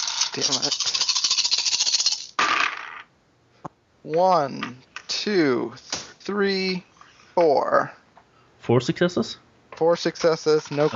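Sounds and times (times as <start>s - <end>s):
handful of dice rolled across a hard surface during a tabletop game: 0.0s - 3.1s, 10.2s - 10.9s
speech: 0.4s - 1.0s, 4.0s - 8.0s, 8.7s - 10.9s.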